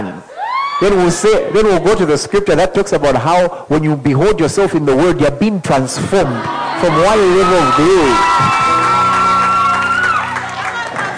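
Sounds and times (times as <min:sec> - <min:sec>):
speech: 0:00.8 - 0:08.7
large audience screaming and shouting: 0:06.2 - 0:11.1.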